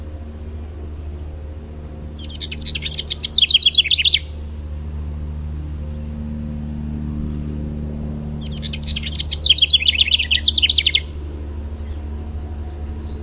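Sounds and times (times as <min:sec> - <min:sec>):
house wren singing: 0:00.0 - 0:05.2, 0:08.3 - 0:13.2
low background hum: 0:00.0 - 0:13.2.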